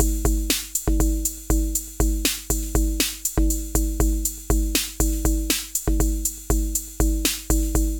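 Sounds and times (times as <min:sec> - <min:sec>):
drum machine beat: 0:00.0 - 0:07.9.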